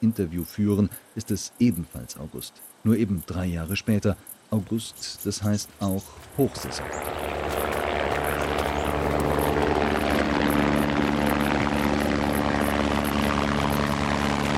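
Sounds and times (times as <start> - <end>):
speech: 0.0 - 7.6
helicopter engine droning: 6.0 - 14.5.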